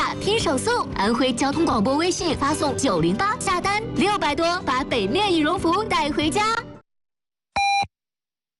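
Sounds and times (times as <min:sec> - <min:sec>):
speech: 0:00.2 - 0:06.6
radio station half-hour time signal beeps: 0:07.6 - 0:07.9.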